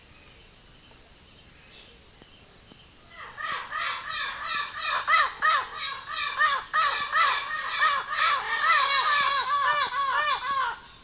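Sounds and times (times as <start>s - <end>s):
steady high hiss: 0.0s - 11.0s
bird harsh caw-like calls: 3.1s - 11.0s.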